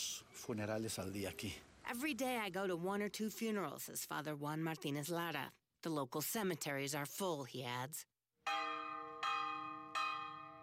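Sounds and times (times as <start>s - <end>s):
speech: 0.5s - 8.1s
church bell ringing for Sunday Mass: 8.4s - 10.6s.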